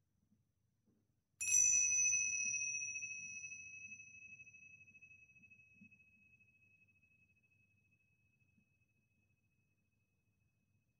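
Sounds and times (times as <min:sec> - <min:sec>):
single bell struck to mark the start of a guided breathing practice: 0:01.4 - 0:05.1.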